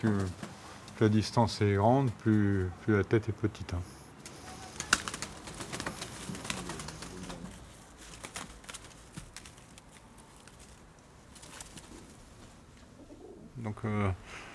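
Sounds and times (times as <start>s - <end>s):
speech: 0.0s - 0.4s, 1.0s - 4.0s, 13.8s - 14.5s
pigeons cooing: 4.2s - 7.7s, 10.0s - 13.6s
faint pigeon wing flutters: 4.2s - 13.4s.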